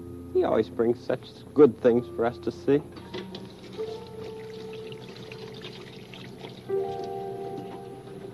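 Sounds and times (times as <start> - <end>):
speech: 0.3 - 3.1
water pouring from a can onto a plant: 3.4 - 7.8.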